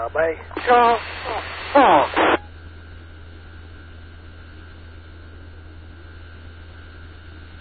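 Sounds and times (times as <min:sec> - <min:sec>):
speech: 0:00.0 - 0:02.3
garbled unintelligible voice through an amateur radio: 0:00.0 - 0:02.4.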